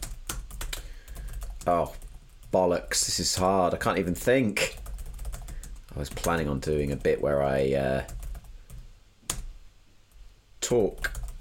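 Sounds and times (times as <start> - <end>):
keystrokes on a computer keyboard: 0.0 - 2.3, 4.8 - 7.1, 8.0 - 9.5, 10.8 - 11.3
speech: 1.6 - 4.8, 6.0 - 8.2, 10.7 - 11.2.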